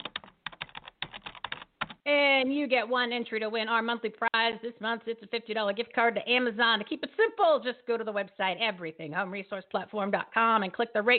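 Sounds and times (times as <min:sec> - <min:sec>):
fingers typing on a computer keyboard: 0:00.0 - 0:02.0
speech: 0:02.1 - 0:11.1.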